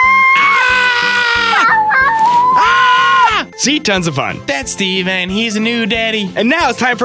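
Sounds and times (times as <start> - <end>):
baby girl screaming and squealing: 0.0 - 3.5
speech: 3.6 - 7.0.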